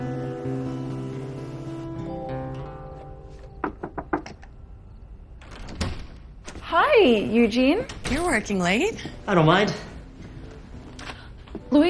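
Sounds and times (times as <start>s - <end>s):
music: 0.0s - 11.8s
crisp knocks on a door: 3.6s - 4.4s
speech: 7.0s - 9.9s.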